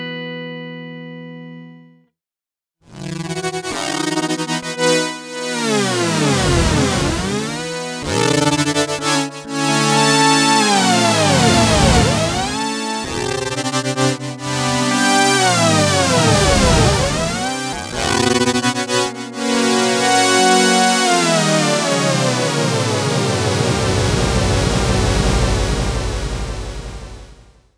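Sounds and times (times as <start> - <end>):
polyphonic ring modulated synth: 2.9 - 27.5.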